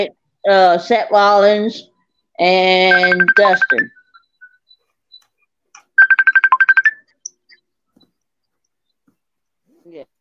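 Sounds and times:
speech: 0:00.0 - 0:04.0
phone ringtone for an incoming FaceTime call: 0:02.5 - 0:04.7, 0:05.8 - 0:07.6.

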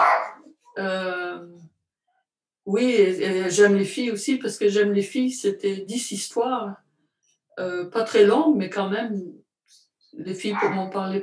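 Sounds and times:
dog barking: 0:00.0 - 0:00.5, 0:10.4 - 0:11.0
speech: 0:00.8 - 0:01.5, 0:02.7 - 0:06.8, 0:07.6 - 0:11.2.

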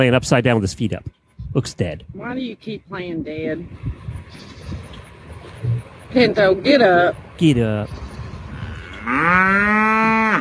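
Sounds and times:
speech: 0:00.0 - 0:04.6, 0:06.1 - 0:08.1, 0:09.0 - 0:10.4
cow mooing: 0:08.4 - 0:10.4.

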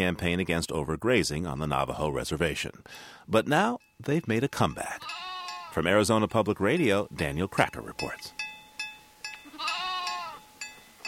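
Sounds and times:
speech: 0:00.0 - 0:08.4
Angora goats and churro sheep bleating: 0:04.8 - 0:06.0, 0:09.4 - 0:10.5.

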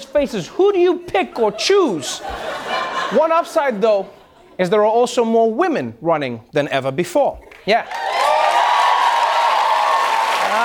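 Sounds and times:
speech: 0:00.0 - 0:08.0
laughter: 0:01.2 - 0:04.6
studio audience applauding: 0:07.5 - 0:10.6.

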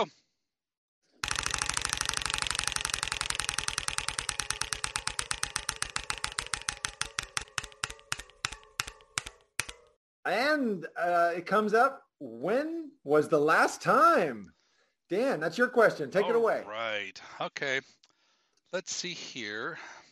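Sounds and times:
speech: 0:00.0 - 0:00.2, 0:10.3 - 0:18.0, 0:18.7 - 0:20.0
prize wheel ticking while being spun: 0:01.2 - 0:10.0.

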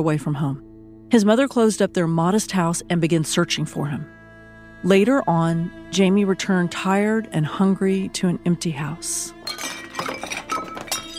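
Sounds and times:
speech: 0:00.0 - 0:04.2, 0:04.8 - 0:09.7
crockery breaking: 0:09.5 - 0:11.1
dishes clinking and clattering: 0:09.5 - 0:11.1.

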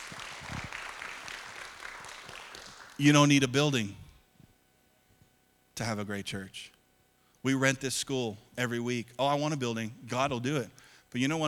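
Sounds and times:
audience applause: 0:00.0 - 0:03.0
speech: 0:03.0 - 0:04.0, 0:05.8 - 0:06.8, 0:07.4 - 0:11.4.

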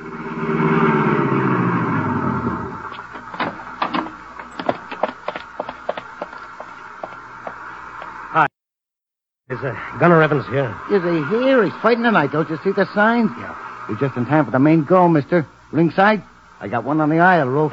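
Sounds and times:
car engine revving and winding down: 0:00.0 - 0:04.9
abrupt thump: 0:03.0 - 0:04.8
speech: 0:09.6 - 0:17.7.

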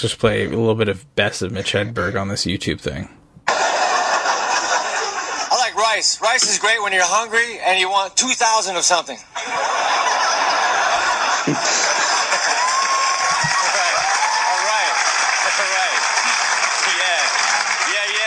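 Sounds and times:
speech: 0:00.0 - 0:03.2, 0:05.9 - 0:09.8, 0:11.5 - 0:11.9
audience laughter at a comedy recording: 0:03.5 - 0:05.9, 0:09.4 - 0:14.0
audience applause at a comedy recording: 0:11.5 - 0:18.2
voices rising over applause: 0:12.3 - 0:18.2.

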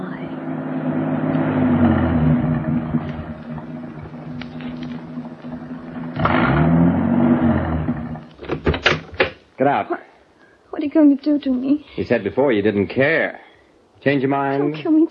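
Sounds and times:
car engine climbing uphill to the Hollywood Hills: 0:00.0 - 0:08.8
speech: 0:09.7 - 0:10.1, 0:10.8 - 0:13.4, 0:14.0 - 0:15.0.

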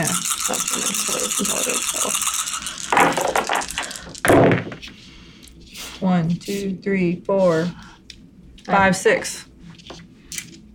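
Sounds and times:
dice tumbling onto a table: 0:00.4 - 0:04.9
speech: 0:06.5 - 0:07.8, 0:08.7 - 0:09.5.

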